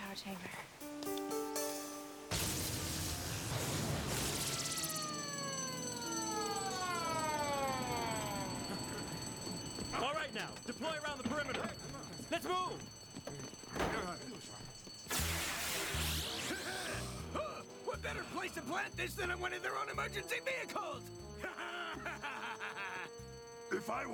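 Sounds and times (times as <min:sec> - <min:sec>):
speech: 0:00.2 - 0:01.2, 0:10.4 - 0:13.4, 0:18.0 - 0:21.6, 0:23.9 - 0:24.1
loud electronic alarm with high tones and falling siren-like sweeps: 0:01.6 - 0:24.1
laughter: 0:21.4 - 0:23.4.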